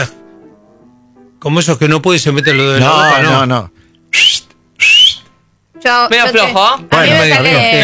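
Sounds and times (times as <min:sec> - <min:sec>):
speech: 0:01.4 - 0:04.4, 0:05.8 - 0:07.8
shrill mouth whistles for herding animals: 0:02.4 - 0:03.4, 0:04.1 - 0:05.3.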